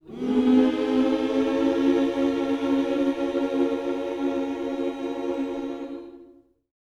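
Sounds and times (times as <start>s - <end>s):
gospel vocal in minor key: 0.0s - 6.4s.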